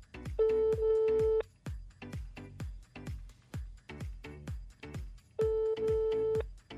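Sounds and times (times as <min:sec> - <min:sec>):
phone call ringing tones, unanswered: 0:00.4 - 0:01.4, 0:05.4 - 0:06.5.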